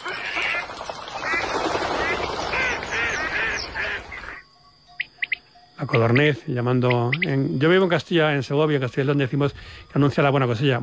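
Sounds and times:
ducks quacking on wetland lagoons: 0:00.0 - 0:04.4
busy wetland background: 0:00.0 - 0:10.8
speech: 0:05.8 - 0:10.8.

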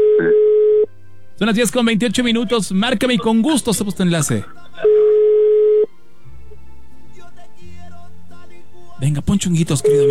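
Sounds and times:
telephone ringback tone on an outgoing call: 0:00.0 - 0:00.9, 0:04.9 - 0:05.9, 0:09.8 - 0:10.0
speech: 0:00.2 - 0:00.4, 0:01.4 - 0:04.9, 0:09.0 - 0:10.0.

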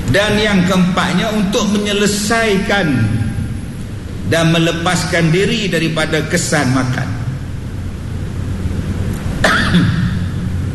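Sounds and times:
hiss: 0:00.0 - 0:10.7
speech: 0:00.1 - 0:03.2, 0:04.3 - 0:07.2, 0:09.5 - 0:10.0
person coughing: 0:09.4 - 0:10.4.

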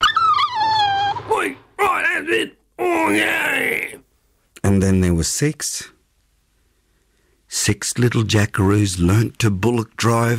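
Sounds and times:
dog yelping and whining after being kicked: 0:00.0 - 0:01.3
speech: 0:02.3 - 0:03.5, 0:04.7 - 0:06.0, 0:07.6 - 0:10.3.

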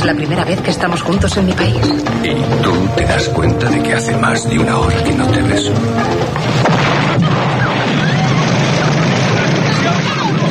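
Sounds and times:
speech: 0:00.0 - 0:07.7
bomb explosion in film scene: 0:06.3 - 0:10.4
crashing debris: 0:06.4 - 0:10.4.

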